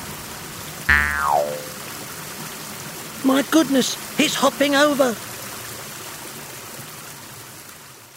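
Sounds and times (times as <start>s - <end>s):
flowing river water: 0.9s - 7.0s
speech: 3.2s - 5.3s.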